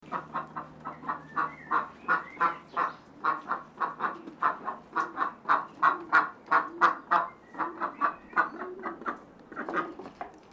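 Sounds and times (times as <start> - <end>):
duck giving nasal quacks: 0.0 - 10.0.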